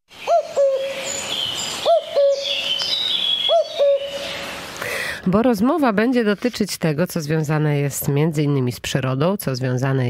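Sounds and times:
birds chirping and twittering: 0:00.1 - 0:04.8
clear two-note hooting bird call: 0:00.2 - 0:01.2, 0:01.8 - 0:04.5
speech: 0:05.3 - 0:10.0.

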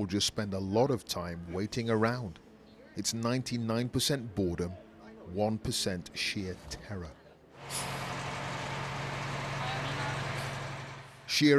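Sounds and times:
speech: 0:00.0 - 0:02.4, 0:03.0 - 0:08.0, 0:11.3 - 0:11.5
military truck air brakes hissing: 0:07.6 - 0:09.2
30-ton Israeli military truck engine rumbling: 0:07.6 - 0:11.5.

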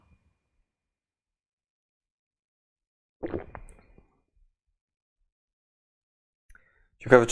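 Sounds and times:
speech: 0:03.2 - 0:03.6, 0:07.0 - 0:07.3
person sipping and swallowing a drink: 0:03.2 - 0:04.1.

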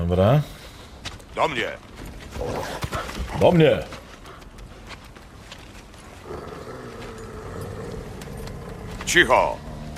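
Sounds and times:
speech: 0:00.1 - 0:00.6, 0:01.4 - 0:04.0, 0:09.1 - 0:09.6
wolf growling: 0:06.2 - 0:09.9.

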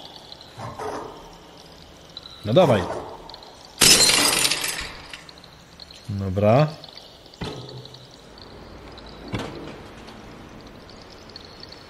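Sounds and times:
speech: 0:02.4 - 0:03.0, 0:06.1 - 0:06.8
glass pane shattering with a loud crash: 0:03.8 - 0:05.3
glass shards tinkling: 0:03.8 - 0:05.4.

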